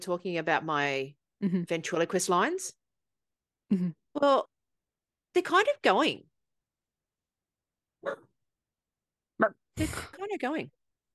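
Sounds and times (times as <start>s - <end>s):
speech: 0.0s - 2.8s, 3.7s - 4.5s, 5.3s - 6.3s, 8.0s - 8.3s, 9.4s - 10.8s
dog barking: 8.0s - 8.3s.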